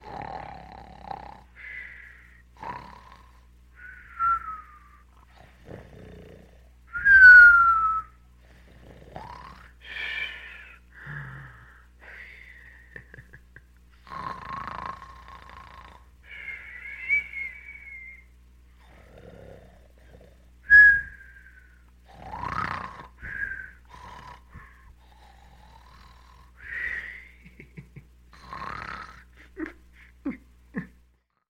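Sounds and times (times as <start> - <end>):
man snoring with whistling: 0.0 - 12.4, 14.0 - 27.5, 28.4 - 29.4.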